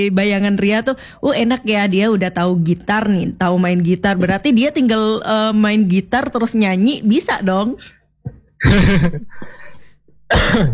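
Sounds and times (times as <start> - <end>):
speech: 0.0 - 9.6, 10.3 - 10.7
person coughing: 8.6 - 9.6, 10.3 - 10.7.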